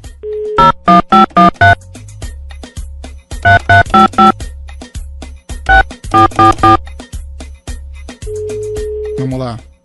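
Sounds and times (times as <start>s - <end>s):
outgoing phone call ringback tone: 0.3s - 1.8s, 3.5s - 4.4s, 5.7s - 6.8s, 8.3s - 9.2s
loud bursts of rhythmic musical chords: 0.6s - 1.8s, 3.5s - 4.3s, 5.7s - 6.8s.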